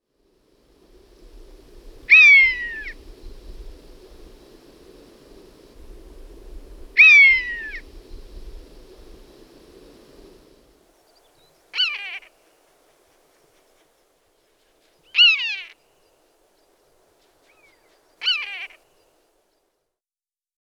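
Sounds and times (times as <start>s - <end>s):
common buzzard: 2.1s - 3.0s, 7.0s - 7.8s, 11.0s - 19.6s.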